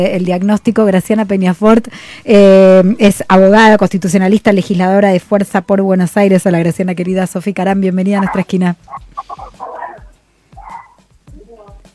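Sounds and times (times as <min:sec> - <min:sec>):
speech: 0:00.0 - 0:09.8
several dogs barking and yelping: 0:08.2 - 0:11.8.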